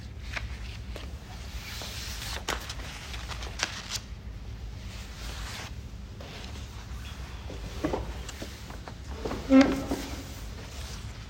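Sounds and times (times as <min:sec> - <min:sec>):
papers rustled and shuffled to find a quotation: 0:00.1 - 0:04.3, 0:05.0 - 0:11.2.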